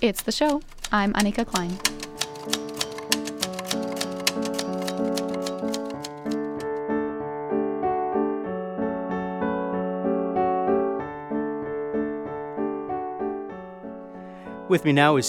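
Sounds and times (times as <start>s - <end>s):
speech: 0.0s - 2.6s, 14.7s - 15.2s
1960s typewriter typing letter by letter: 0.0s - 6.8s
soft melodic music: 0.6s - 15.2s.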